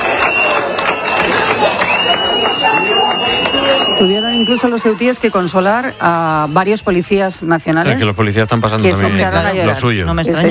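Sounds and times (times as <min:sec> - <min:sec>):
large crowd applauding: 0:00.0 - 0:06.4
speech: 0:04.0 - 0:10.5.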